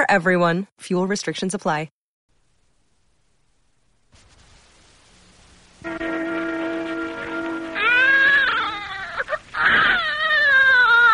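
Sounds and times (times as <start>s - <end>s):
speech: 0.0s - 2.0s
newborn baby crying: 7.6s - 11.1s.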